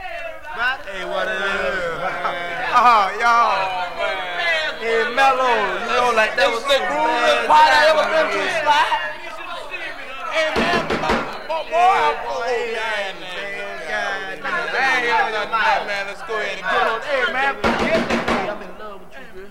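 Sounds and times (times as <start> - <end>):
laughter: 0.0 - 19.4
speech: 2.8 - 3.8, 5.0 - 9.1, 10.3 - 13.2, 14.7 - 18.8
sharp knocking on a door: 10.6 - 11.4, 17.6 - 18.7.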